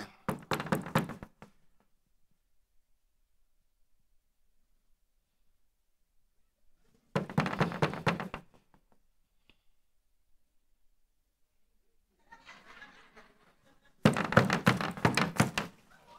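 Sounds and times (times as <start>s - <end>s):
knocking on the front door of a house: 0.3s - 1.5s, 7.2s - 8.6s, 14.0s - 15.8s
laughter: 12.2s - 14.0s.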